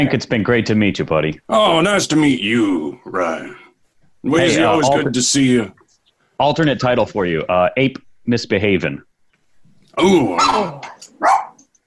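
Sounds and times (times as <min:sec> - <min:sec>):
speech: 0:00.0 - 0:03.6, 0:04.2 - 0:05.8, 0:06.4 - 0:09.1, 0:10.0 - 0:11.4
pet dog barking: 0:10.4 - 0:11.7.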